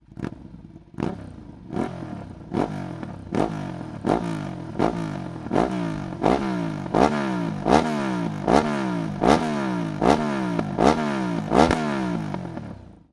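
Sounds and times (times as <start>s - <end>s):
Ducati Diavel motorcycle with Hyper Cone slip-on exhaust: 0.0s - 13.1s.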